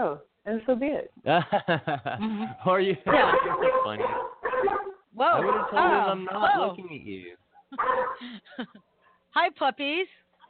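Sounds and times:
speech: 0.0s - 10.2s
puppies barking at someone at the door: 3.1s - 6.7s, 7.6s - 8.3s.

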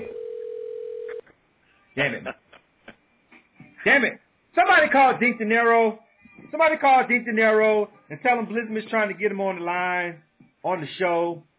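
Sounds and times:
steady electronic phone ringing tone of an outgoing call: 0.0s - 1.2s
speech: 2.0s - 2.4s, 3.8s - 11.5s.

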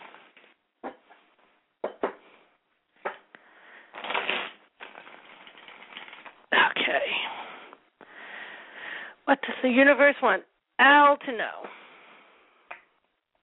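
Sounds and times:
deck of cards being shuffled: 3.9s - 6.4s
speech: 9.3s - 11.8s.

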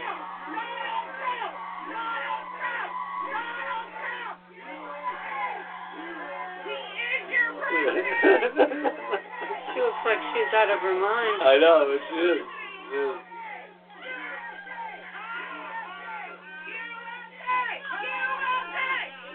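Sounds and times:
crowd chanting: 0.0s - 19.3s
laughter: 5.7s - 10.8s
speech: 8.2s - 9.1s, 10.0s - 13.3s.

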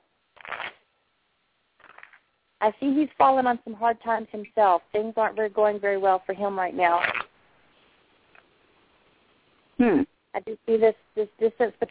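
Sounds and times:
deck of playing cards being riffle shuffled: 0.4s - 0.8s, 1.8s - 2.2s, 6.9s - 7.3s
speech: 2.6s - 7.2s, 9.8s - 11.9s.

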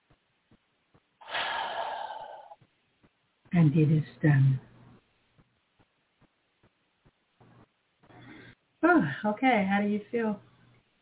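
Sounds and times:
long deep breath drawn in: 1.2s - 2.6s
speech: 3.5s - 4.7s, 9.2s - 10.5s.

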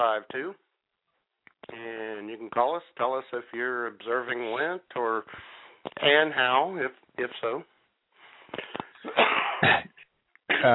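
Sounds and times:
speech: 0.0s - 0.6s, 1.6s - 7.7s, 8.5s - 9.8s, 10.6s - 10.7s
person coughing: 9.0s - 10.7s
rough gravelly throat clearing: 9.0s - 10.7s.

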